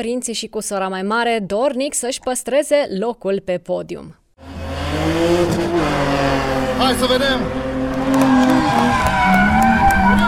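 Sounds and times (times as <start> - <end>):
speech: 0.0 - 4.2, 6.8 - 9.5
drift car engine revving hard at a drifting championship: 4.4 - 10.2
drift car tire squeal: 4.5 - 10.2.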